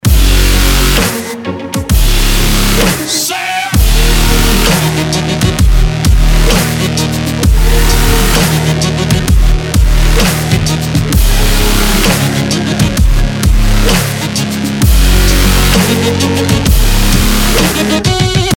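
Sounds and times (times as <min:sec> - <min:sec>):
dubstep music: 0:00.0 - 0:18.5.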